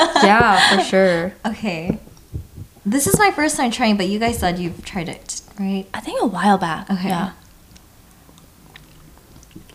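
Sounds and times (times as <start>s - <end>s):
speech: 0.2s - 2.1s, 2.8s - 7.4s
people biting and chewing a sweet snack: 7.6s - 9.7s.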